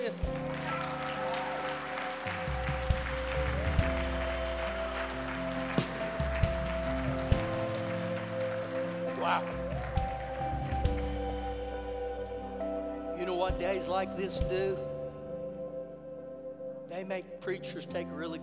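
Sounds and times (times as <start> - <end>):
speech: 0.0 - 0.6, 13.5 - 14.9, 17.1 - 18.4
audience clapping: 0.0 - 14.7
sustained keyboard or organ chords: 0.0 - 18.4.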